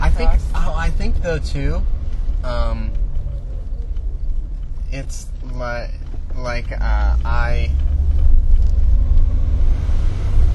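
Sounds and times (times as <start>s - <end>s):
road rumble heard from inside a moving car: 0.0s - 10.5s
speech: 1.2s - 3.0s, 4.9s - 7.8s.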